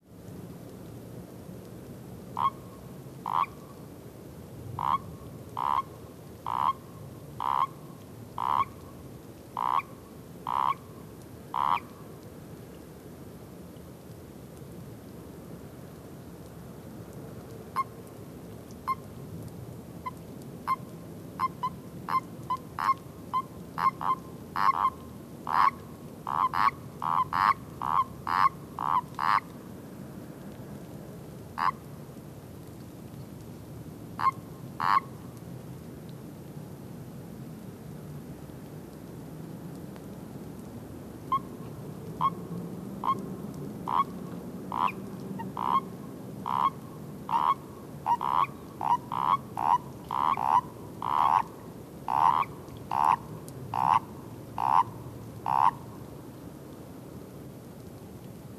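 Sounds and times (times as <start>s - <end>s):
common toad mating call: 2.3s - 3.6s, 4.8s - 7.8s, 8.4s - 8.8s, 9.6s - 10.9s, 11.5s - 12.0s, 20.0s - 29.6s, 31.6s - 31.8s, 34.2s - 35.1s, 41.3s - 41.6s, 42.2s - 42.4s, 43.0s - 43.2s, 43.8s - 55.9s.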